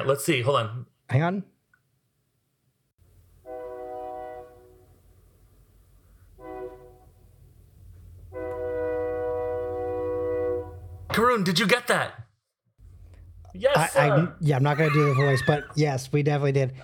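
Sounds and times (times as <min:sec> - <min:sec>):
speech: 0:00.0 - 0:01.5, 0:11.2 - 0:12.2, 0:13.5 - 0:16.8
train horn blasts: 0:03.4 - 0:05.1, 0:06.3 - 0:07.2, 0:08.3 - 0:11.1
laughter: 0:14.6 - 0:15.8.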